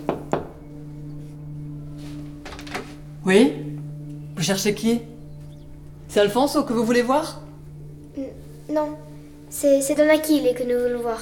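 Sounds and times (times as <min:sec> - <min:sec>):
steady low hum: 0:00.0 - 0:11.2
knocks on a door: 0:00.1 - 0:00.6
speech: 0:03.3 - 0:03.6, 0:04.4 - 0:05.1, 0:06.1 - 0:07.4, 0:08.7 - 0:11.2.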